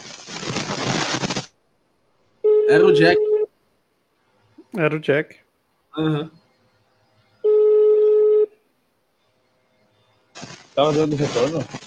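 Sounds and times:
electronic telephone tone from a call app: 2.4 - 3.5, 7.4 - 8.6
speech: 2.7 - 3.3, 4.7 - 5.4, 6.0 - 6.4, 10.4 - 11.8.

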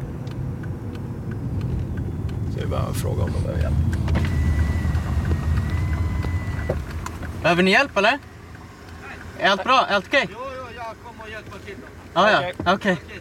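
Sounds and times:
road rumble inside a car on a 70 km/h road: 0.0 - 13.2
speech: 2.6 - 4.4, 7.4 - 8.3, 9.4 - 10.4, 11.4 - 13.2.

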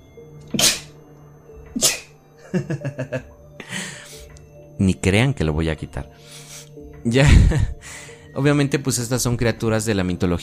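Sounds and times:
person sneezing: 0.5 - 1.0, 1.8 - 2.2
speech: 1.8 - 3.4, 4.8 - 6.4, 7.0 - 7.8, 8.4 - 10.4
laughter: 2.4 - 3.3.

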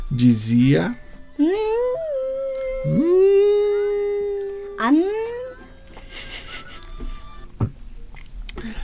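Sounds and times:
speech: 0.1 - 1.7, 2.8 - 3.1, 4.8 - 5.1
voice imitating the cry of a Chinese cat: 1.4 - 5.7.

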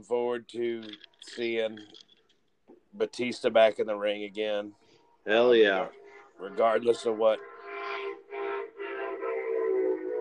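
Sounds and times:
speech: 0.0 - 2.1, 2.9 - 7.5
loud brassy train horn blasts: 5.6 - 10.2.

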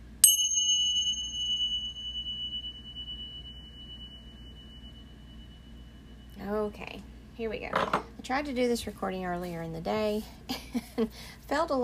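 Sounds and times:
quiet low hum: 0.0 - 11.8
single bell struck: 0.2 - 6.8
speech: 6.4 - 11.8.

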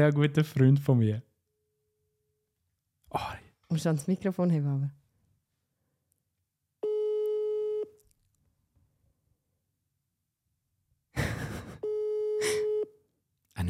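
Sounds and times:
speech: 0.0 - 1.3, 3.1 - 5.0
phone ringback tone of an unanswered call: 6.8 - 8.0, 11.8 - 12.9.

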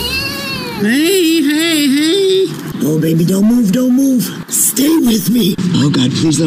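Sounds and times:
kitten crying after CPR: 0.0 - 1.8
speech: 0.8 - 1.1, 2.8 - 6.4.

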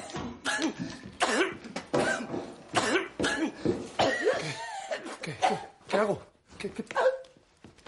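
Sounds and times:
man coughing in harsh choking fits at home: 0.4 - 6.2
speech: 6.0 - 7.0.

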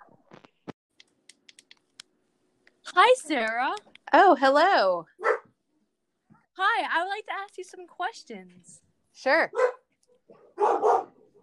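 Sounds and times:
speech: 3.0 - 5.3, 6.6 - 9.8
dog barking: 5.2 - 5.5, 9.5 - 11.4.

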